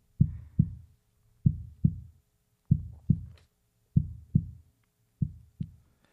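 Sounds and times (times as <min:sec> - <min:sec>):
heartbeat from a sound machine: 0:00.2 - 0:03.4, 0:04.0 - 0:04.6, 0:05.2 - 0:05.8.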